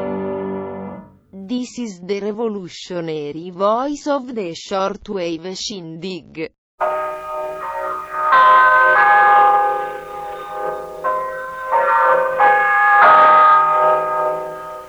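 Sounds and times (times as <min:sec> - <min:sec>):
speech: 0:01.7 - 0:07.2
radio station time chime with bell-like notes: 0:06.8 - 0:14.8.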